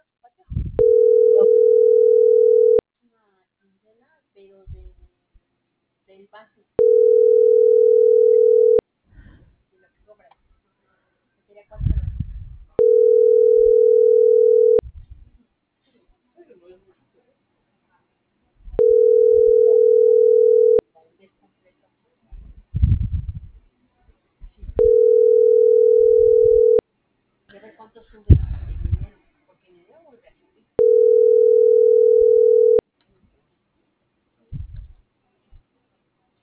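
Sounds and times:
faint low rumbles: 0:00.4 - 0:01.7, 0:11.7 - 0:12.8, 0:22.3 - 0:23.8, 0:28.2 - 0:29.2, 0:34.5 - 0:35.6
telephone call ringback tones ringing unanswered: 0:00.8 - 0:02.8, 0:06.8 - 0:08.8, 0:12.8 - 0:14.8, 0:18.8 - 0:20.8, 0:24.8 - 0:26.8, 0:30.8 - 0:32.8.

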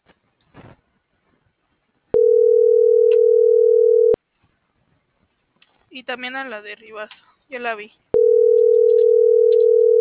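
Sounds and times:
telephone tone while dialing a call: 0:02.2 - 0:04.2, 0:08.2 - 0:09.9
speech: 0:06.0 - 0:08.0.

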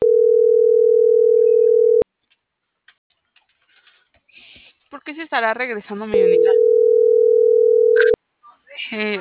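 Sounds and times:
telephone dial tone while a call is placed: 0:00.0 - 0:02.0, 0:06.4 - 0:08.2
speech: 0:05.1 - 0:06.9, 0:08.9 - 0:09.2.

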